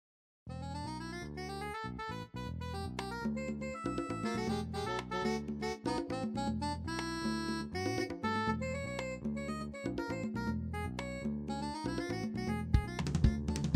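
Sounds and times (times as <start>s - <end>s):
jazz saxophone: 0.6s - 13.6s.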